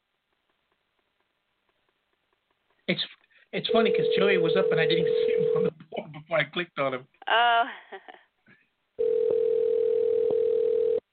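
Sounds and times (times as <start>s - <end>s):
speech: 2.9s - 8.2s
telephone ringback tone on an outgoing call: 3.7s - 5.7s, 9.0s - 11.0s.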